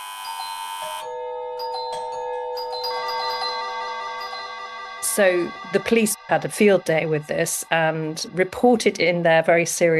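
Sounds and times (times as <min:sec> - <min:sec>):
electronic doorbell ringing: 0:00.0 - 0:05.6
speech: 0:00.8 - 0:01.4, 0:05.1 - 0:09.9.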